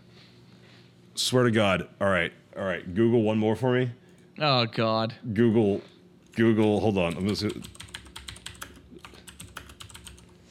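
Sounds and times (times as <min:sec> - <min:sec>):
speech: 0:01.2 - 0:07.8
rapid typing on a mechanical keyboard with brown keys: 0:06.6 - 0:10.3.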